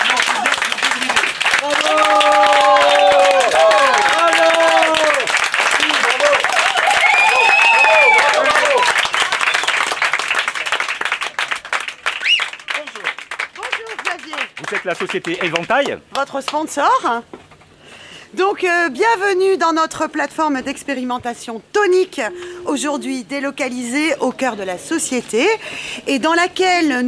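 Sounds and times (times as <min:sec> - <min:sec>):
large audience applause: 0:00.0 - 0:16.0
excited voices and cheers: 0:01.6 - 0:09.0
speech: 0:15.0 - 0:17.4, 0:18.5 - 0:27.0.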